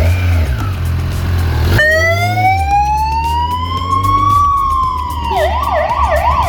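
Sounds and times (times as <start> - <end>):
motorcycle ambulance engine rumbling in Poland: 0.0 - 6.4
motorcycle ambulance siren in Poland: 1.8 - 6.4.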